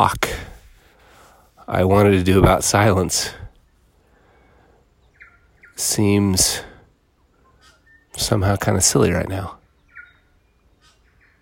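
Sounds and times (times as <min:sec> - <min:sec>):
speech: 0:00.0 - 0:00.4, 0:01.7 - 0:03.4, 0:05.8 - 0:06.7, 0:08.2 - 0:09.6
birds chirping outdoors: 0:00.0 - 0:11.3.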